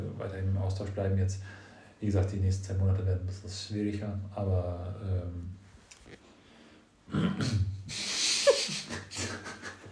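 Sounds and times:
speech: 0:00.2 - 0:05.6
person clearing throat: 0:07.1 - 0:07.9.

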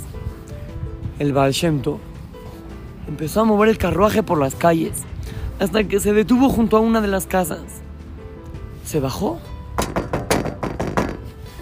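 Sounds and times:
speech: 0:01.2 - 0:02.1, 0:03.1 - 0:07.8, 0:08.9 - 0:09.9
firm knocking on a wooden door: 0:09.8 - 0:11.4.

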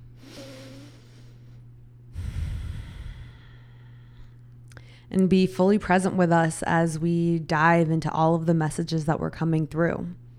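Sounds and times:
deep breath: 0:00.2 - 0:05.1
speech: 0:05.1 - 0:10.2.

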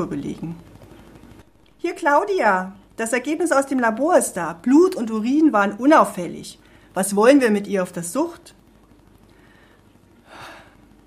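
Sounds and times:
speech: 0:00.0 - 0:00.7, 0:01.8 - 0:08.6
deep inhale: 0:09.3 - 0:10.9.

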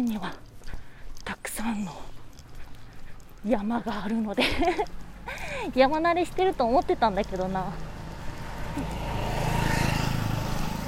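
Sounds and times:
speech: 0:00.0 - 0:00.4, 0:01.6 - 0:02.1, 0:03.4 - 0:07.9, 0:08.8 - 0:09.0
outdoor noise: 0:00.0 - 0:10.8
laughter: 0:04.4 - 0:04.9
motorcycle engine passing on a slope in a residential area: 0:07.6 - 0:10.8.

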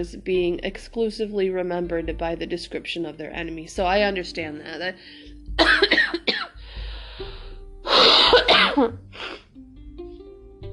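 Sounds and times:
speech: 0:00.0 - 0:06.0, 0:08.8 - 0:09.4
person coughing: 0:05.6 - 0:06.6, 0:08.0 - 0:09.4.

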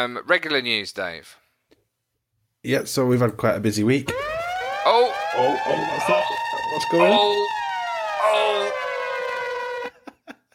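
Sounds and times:
speech: 0:00.0 - 0:01.4, 0:02.6 - 0:07.6
siren-style free game alert sound effect: 0:04.1 - 0:09.9.

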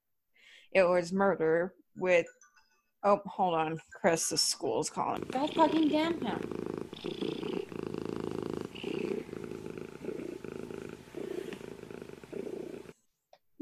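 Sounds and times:
speech: 0:00.7 - 0:02.4, 0:03.0 - 0:07.2
male domestic pet cat purring: 0:04.9 - 0:13.0.

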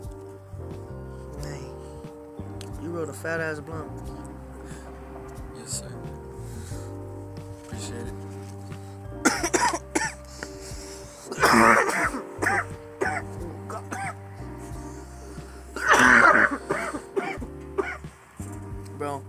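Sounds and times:
speech: 0:03.0 - 0:04.3
throat clearing: 0:09.2 - 0:10.2, 0:11.3 - 0:14.2, 0:15.8 - 0:18.0
harsh raspy coughing fits: 0:09.2 - 0:10.5, 0:11.2 - 0:14.2, 0:15.7 - 0:18.1.

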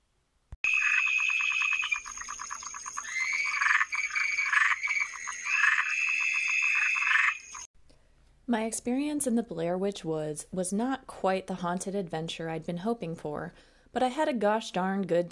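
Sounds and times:
giant toad calling in a buzzing pulsed trill in the woods: 0:00.6 - 0:07.7
speech: 0:08.5 - 0:15.3.

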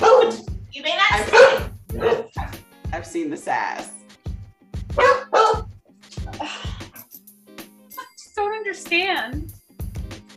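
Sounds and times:
dog whining yelp: 0:00.0 - 0:00.4, 0:05.0 - 0:05.6
dog barking: 0:00.0 - 0:00.5, 0:01.2 - 0:02.4, 0:05.0 - 0:05.7
people talking: 0:00.8 - 0:03.9, 0:08.0 - 0:09.5.

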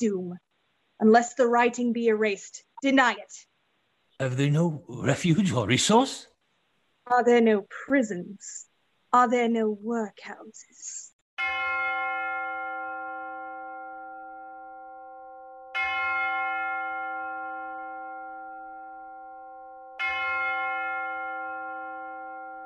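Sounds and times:
speech: 0:00.0 - 0:03.5, 0:04.2 - 0:06.3, 0:07.1 - 0:12.2
church bell tolling: 0:11.4 - 0:22.6.

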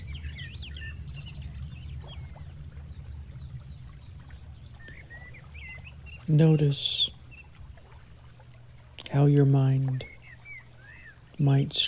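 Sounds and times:
low rumble: 0:00.0 - 0:06.4
birds singing outdoors: 0:00.0 - 0:11.8
speech: 0:06.3 - 0:07.2, 0:09.2 - 0:10.1, 0:11.4 - 0:11.8.

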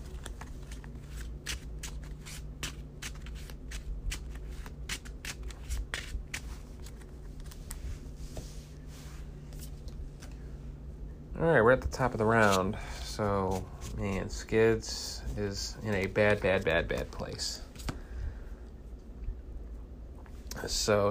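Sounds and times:
deck of cards being shuffled during a card game: 0:00.0 - 0:08.7, 0:12.3 - 0:12.7, 0:15.2 - 0:18.0
low hum: 0:00.0 - 0:21.0
speech: 0:11.4 - 0:17.7, 0:20.7 - 0:21.0.

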